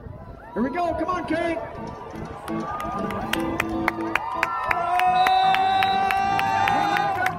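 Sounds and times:
large crowd cheering and shouting at a local rodeo: 0.0s - 7.3s
speech: 0.6s - 5.3s
scattered claps: 1.7s - 7.3s
sharp whistles: 5.0s - 7.2s.

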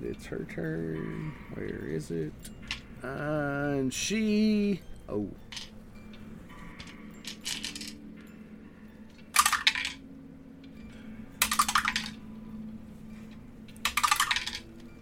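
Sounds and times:
low hum: 0.0s - 15.0s
speech: 0.1s - 5.7s
handful of dice rattling and clattering: 5.5s - 5.7s, 6.8s - 8.0s, 9.4s - 10.0s, 11.4s - 12.2s, 13.8s - 14.6s.

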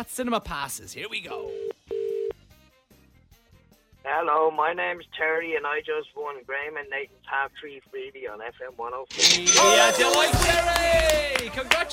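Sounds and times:
speech: 0.0s - 1.7s, 4.1s - 11.9s
steady telephone tone: 1.4s - 2.3s.

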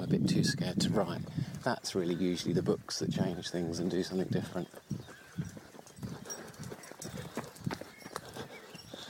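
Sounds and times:
speech: 0.1s - 5.0s
quick rhythmic running footsteps: 0.8s - 9.0s
dog's paws pattering: 3.9s - 9.0s.

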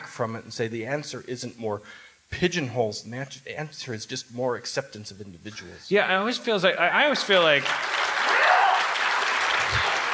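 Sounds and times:
speech: 0.2s - 8.0s
steady audience applause: 7.3s - 10.1s.

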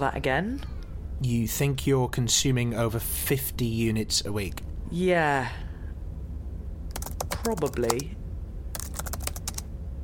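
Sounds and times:
speech: 0.0s - 5.6s, 7.4s - 8.2s
low hum: 0.0s - 10.0s
typing notes on a computer keyboard: 6.9s - 8.1s, 8.7s - 9.6s.

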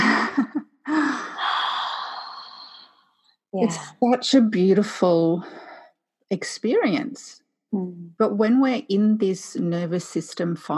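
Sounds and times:
deep breath in: 0.9s - 3.0s
speech: 3.6s - 5.7s, 6.3s - 10.7s.

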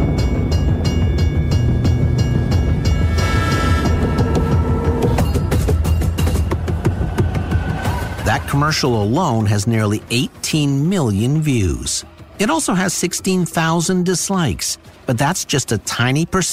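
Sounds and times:
train rumbling past: 0.0s - 11.1s
speech: 8.4s - 16.5s.

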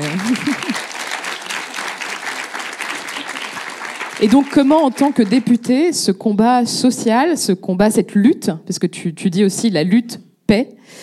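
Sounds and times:
laughter: 0.0s - 1.2s
audience applause of many hands clapping: 0.0s - 5.6s
speech: 0.3s - 0.6s, 4.2s - 11.0s.

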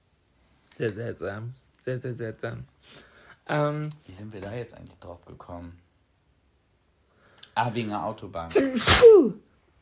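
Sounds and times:
speech: 0.8s - 5.8s, 7.6s - 9.5s
sharp sneeze with a short voiced tail: 8.5s - 9.4s.

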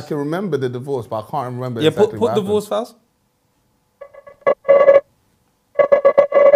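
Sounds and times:
speech: 0.0s - 3.0s
telephone ringing with incoming call: 4.0s - 5.0s, 5.8s - 6.5s.

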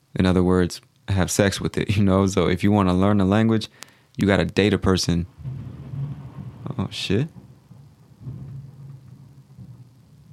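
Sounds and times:
speech: 0.2s - 5.6s, 6.9s - 7.4s
rolling thunder from a lightning strike: 5.2s - 10.3s.

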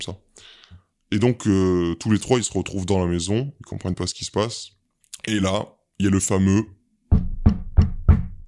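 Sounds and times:
speech: 0.0s - 6.8s
knocking on a door: 7.1s - 8.4s.

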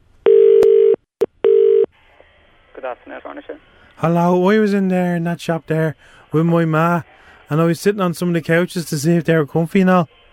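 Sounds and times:
telephone ringing tone of outgoing call to a furniture shop: 0.2s - 1.9s
speech: 2.8s - 10.2s.

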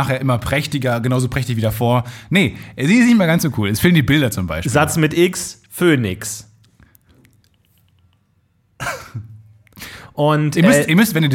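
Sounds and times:
speech: 0.0s - 6.5s, 10.2s - 11.3s
deliberate sharp dry cough after a bad joke: 8.8s - 9.3s.

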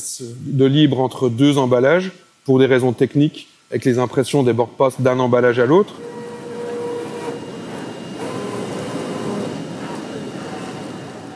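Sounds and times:
speech: 0.2s - 6.2s
large industrial machine pre-cutting big cardboard sheets for packaging: 5.7s - 11.3s.

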